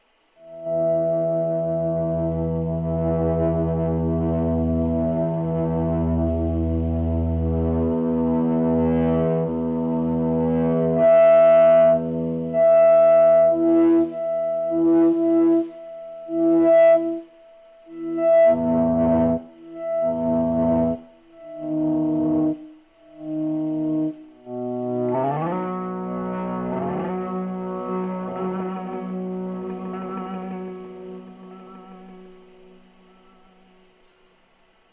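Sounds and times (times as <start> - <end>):
guitar drone in E: 0.0 - 34.9.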